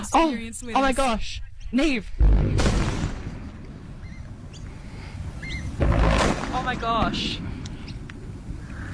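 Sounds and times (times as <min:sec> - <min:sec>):
speech: 0:00.1 - 0:02.7, 0:06.6 - 0:07.6
demolition explosions at a power station chimney stack: 0:02.2 - 0:08.8
faint bird chirps: 0:04.0 - 0:04.7, 0:05.4 - 0:05.8, 0:08.7 - 0:08.9.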